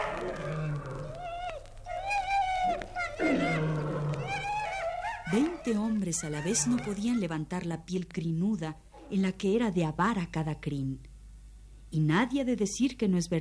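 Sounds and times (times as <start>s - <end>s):
dogs' higher whining cries: 0.1s - 7.4s
about a hundred hungry dogs growling and snarling at night: 3.2s - 6.9s
speech: 5.7s - 11.1s, 11.9s - 13.3s.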